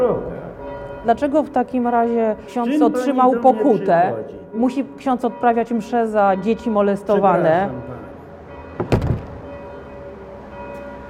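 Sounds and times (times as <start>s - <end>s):
speech: 1.0s - 8.0s
door shutting with a thump: 8.8s - 9.5s.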